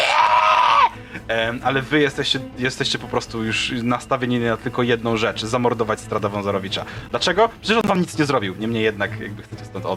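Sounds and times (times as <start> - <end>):
woman screaming: 0.0 - 1.0
speech: 1.3 - 9.9.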